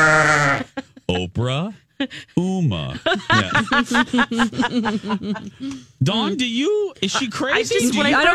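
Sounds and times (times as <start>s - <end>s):
sheep bleating: 0.0s - 0.7s
laughter: 0.4s - 1.7s, 2.6s - 8.3s
speech: 1.1s - 8.3s.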